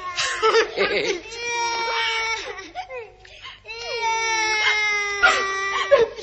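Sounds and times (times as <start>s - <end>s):
laughter: 0.0s - 3.1s
child crying: 0.0s - 6.2s.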